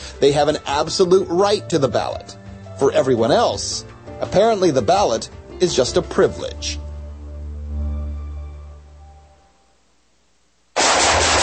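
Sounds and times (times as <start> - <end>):
speech: 0.2 - 6.8
gunfire: 10.8 - 11.4.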